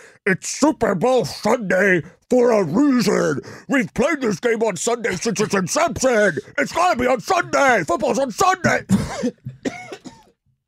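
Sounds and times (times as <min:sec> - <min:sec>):
speech: 0:00.2 - 0:09.8
person imitating the gruff cough of a grumpy old man: 0:05.1 - 0:07.0, 0:08.6 - 0:10.4.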